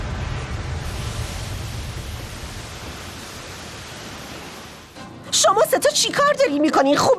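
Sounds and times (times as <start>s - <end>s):
loud steady rush of water from a water-creation spell: 0.0s - 5.4s
speech: 5.3s - 7.1s.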